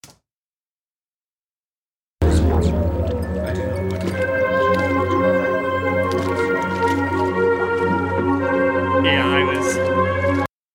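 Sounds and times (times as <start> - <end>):
deep droning synth bass: 2.2 - 10.4
early-1980s style synth music: 2.2 - 10.5.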